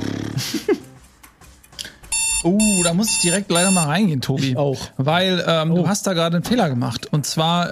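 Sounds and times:
timer beeping as time runs out: 2.1s - 3.9s
speech: 2.4s - 7.7s.

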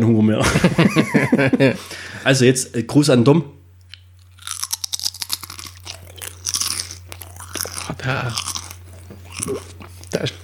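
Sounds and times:
speech: 0.0s - 3.6s, 8.0s - 8.5s, 9.4s - 10.4s
low steady hum: 0.0s - 10.4s
laughter: 0.4s - 1.9s
crunching and chewing pizza-flavoured potato chips: 3.9s - 10.4s.

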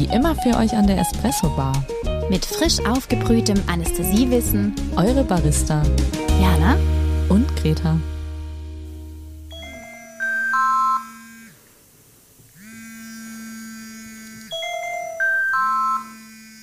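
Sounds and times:
speech: 0.0s - 8.2s
hospital work desk phone ringing with electronic trill: 9.5s - 11.6s, 14.5s - 16.4s.

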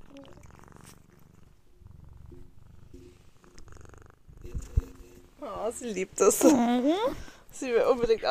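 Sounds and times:
cat purring close to the microphone: 0.0s - 7.3s
speech: 5.4s - 8.2s.

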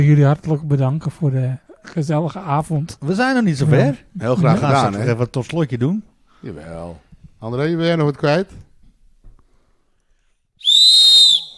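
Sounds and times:
speech: 0.0s - 8.7s
single sharp high-pitched whistle blast: 10.6s - 11.5s.

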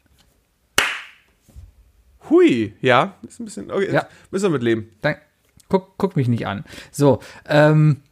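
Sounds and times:
single sharp hand clap for audio sync test: 0.8s - 1.3s
speech: 2.3s - 8.1s.

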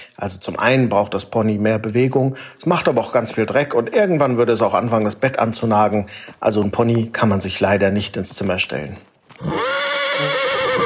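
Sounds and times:
speech: 0.2s - 9.6s
horse whinnying: 9.4s - 10.8s.

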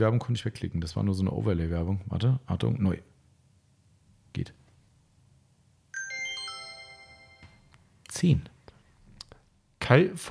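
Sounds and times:
speech: 0.0s - 3.1s, 4.4s - 4.6s, 8.2s - 8.6s, 9.9s - 10.2s
bright electronic chime from a prize draw: 6.0s - 7.7s.

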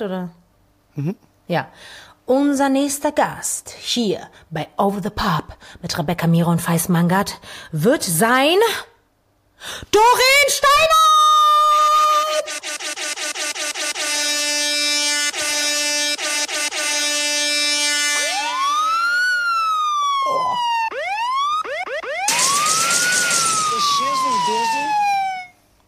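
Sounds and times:
speech: 0.0s - 0.4s, 1.0s - 8.9s, 9.6s - 11.2s
rising and falling electronic siren sweeps: 11.6s - 25.6s
loud dense horn blasts: 12.2s - 18.8s.

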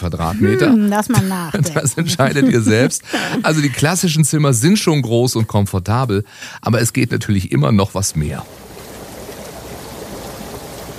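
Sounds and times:
speech: 0.0s - 8.7s
laughter: 0.2s - 5.6s
bubbling water: 8.1s - 10.9s.

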